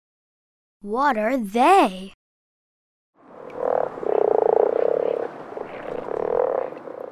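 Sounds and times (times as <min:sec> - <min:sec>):
speech: 0:00.8 - 0:02.2
frogs croaking in a buzzy rasping chorus: 0:03.2 - 0:07.1.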